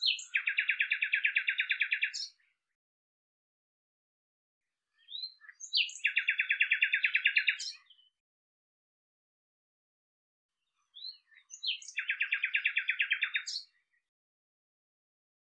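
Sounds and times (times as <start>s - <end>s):
common nightingale song with trills and chirps: 0.0s - 2.6s, 4.9s - 8.2s, 10.7s - 14.1s.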